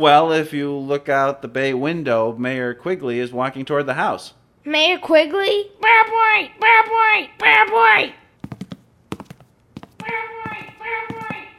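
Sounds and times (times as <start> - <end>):
speech: 0.0 - 8.2
person imitating a bobwhite quail call: 10.0 - 11.5.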